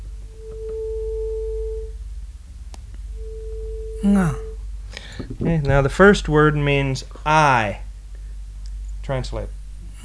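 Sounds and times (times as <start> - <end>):
low rumble: 0.0 - 10.0
pure tuning fork reference tone: 0.3 - 2.0, 3.1 - 4.6
speech: 4.0 - 4.4, 5.3 - 7.8, 9.1 - 10.0.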